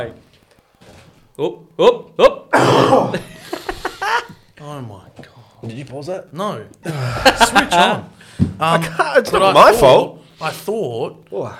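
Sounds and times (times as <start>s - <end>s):
speech: 0.0s - 0.3s, 1.4s - 3.3s, 4.6s - 11.5s
loud throaty raspy coughing fit: 2.2s - 3.6s
laughter: 3.1s - 4.4s, 6.8s - 8.2s.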